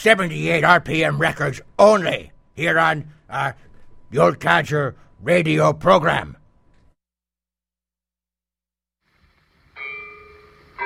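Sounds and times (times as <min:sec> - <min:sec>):
speech: 0:00.0 - 0:06.4
church bells ringing at 12 o'clock in the daytime: 0:09.8 - 0:10.8.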